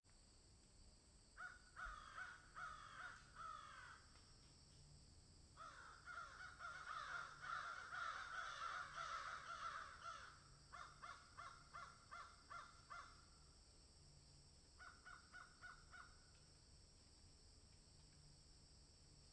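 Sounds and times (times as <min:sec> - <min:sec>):
crows cawing in a field: 0:01.4 - 0:04.1, 0:05.6 - 0:13.2, 0:14.8 - 0:16.2.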